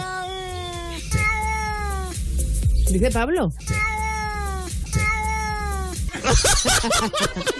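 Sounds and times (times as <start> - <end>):
cat meowing as if talking: 0.0 - 2.1, 3.6 - 6.0
speech: 2.9 - 3.9, 6.3 - 7.5
laughter: 6.1 - 7.5.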